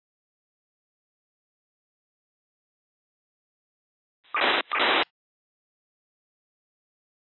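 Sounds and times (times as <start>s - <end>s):
radio transmission on 150.91 MHz narrowband FM: 4.4s - 5.1s.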